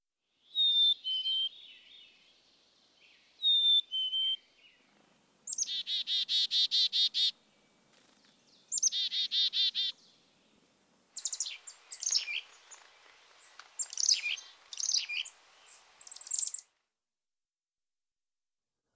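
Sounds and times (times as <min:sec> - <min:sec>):
black-capped chickadee song: 0:00.4 - 0:02.3, 0:03.1 - 0:04.8, 0:05.5 - 0:07.4, 0:08.6 - 0:10.1, 0:11.2 - 0:16.7.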